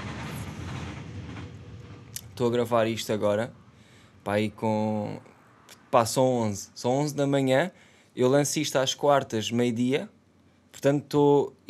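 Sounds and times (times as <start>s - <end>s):
train rumbling past: 0.0s - 5.9s
speech: 2.4s - 3.6s, 4.2s - 5.3s, 5.9s - 10.2s, 10.8s - 11.6s.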